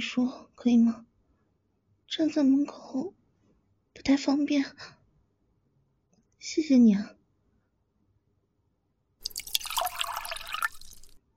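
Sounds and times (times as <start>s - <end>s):
speech: 0.0s - 1.1s, 2.1s - 3.2s, 4.0s - 5.0s, 6.4s - 7.2s
water pouring into a cup: 9.2s - 11.2s.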